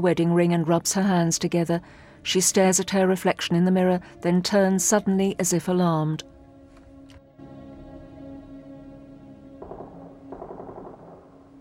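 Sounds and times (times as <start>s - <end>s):
speech: 0.0s - 6.3s
gunshots in rapid bursts like automatic fire: 9.6s - 11.6s.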